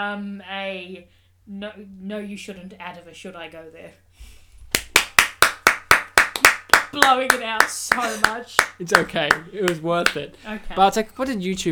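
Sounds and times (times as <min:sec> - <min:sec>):
speech: 0:00.0 - 0:04.4, 0:06.9 - 0:11.7
sharp hand claps: 0:04.7 - 0:10.2.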